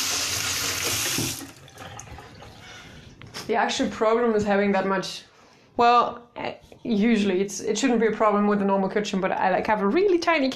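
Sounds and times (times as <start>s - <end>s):
water running from a kitchen tap while hands are washed: 0.0s - 2.3s
speech: 3.5s - 10.5s.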